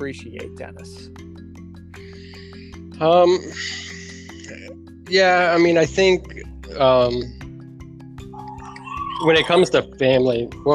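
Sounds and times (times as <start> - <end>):
speech: 0.0 - 1.3, 3.0 - 3.9, 4.5 - 7.4, 9.2 - 10.7
large bird screaming: 8.3 - 9.7.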